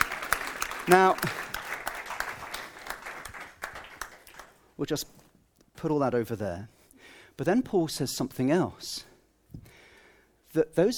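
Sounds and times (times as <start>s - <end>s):
audience applause: 0.0s - 4.5s
speech: 0.8s - 1.4s, 4.8s - 5.2s, 5.8s - 6.8s, 7.4s - 9.6s, 10.5s - 10.9s.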